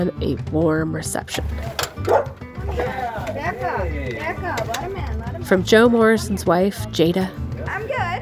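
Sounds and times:
speech: 0.0s - 7.9s
dog barking and yipping at the door of a mobile home in Michigan: 1.6s - 3.9s.

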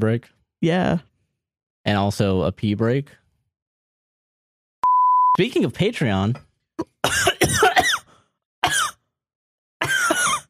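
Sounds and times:
speech: 0.0s - 1.1s, 1.8s - 3.2s, 5.4s - 7.6s
harsh coughing fit: 6.8s - 9.0s, 9.8s - 10.4s.

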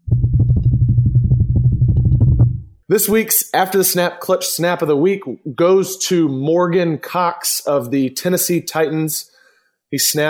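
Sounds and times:
drum roll sound effect: 0.0s - 2.7s
speech: 2.9s - 9.3s, 9.9s - 10.2s.

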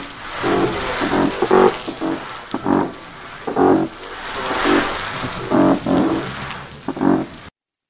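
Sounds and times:
blackspotted croaker giving low rough pulsed croaks: 0.0s - 7.5s.

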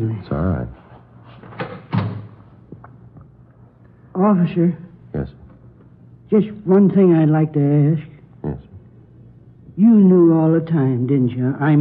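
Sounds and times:
speech: 0.2s - 0.8s, 4.2s - 5.4s, 6.3s - 8.7s, 9.8s - 11.8s
door opening and shutting: 1.4s - 2.4s.

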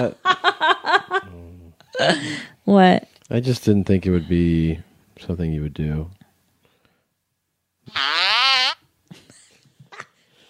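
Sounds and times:
speech: 0.0s - 0.7s, 2.0s - 6.2s, 7.9s - 8.1s
loud buzzy fart: 7.9s - 8.8s.

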